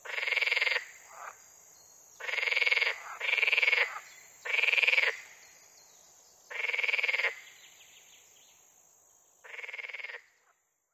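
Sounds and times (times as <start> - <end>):
water frog pulsed rattling croaks: 0.0 - 1.4, 2.2 - 5.2, 6.5 - 7.4, 9.4 - 10.2.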